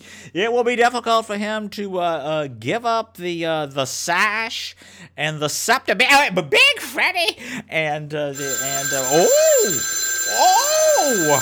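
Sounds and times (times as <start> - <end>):
speech: 0.3 - 11.3
telephone ringing with a warbling electronic tone: 8.4 - 11.3.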